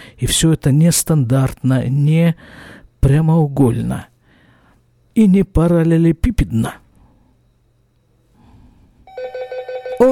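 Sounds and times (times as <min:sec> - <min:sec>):
room noise: 0:00.0 - 0:10.1
speech: 0:00.2 - 0:04.1, 0:05.2 - 0:06.8
telephone ringing: 0:09.1 - 0:10.1.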